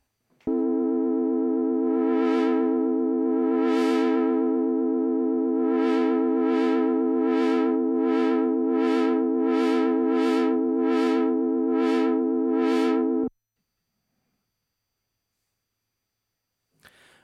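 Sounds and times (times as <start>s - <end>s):
synthesizer note with filter cutoff swept by modulation wheel: 0.5s - 13.3s.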